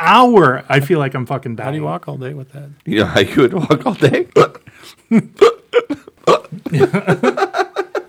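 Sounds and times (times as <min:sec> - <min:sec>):
speech: 0:00.1 - 0:07.6
laughter: 0:03.3 - 0:08.0
person mimicking hiccups with vocal hics: 0:05.4 - 0:06.6.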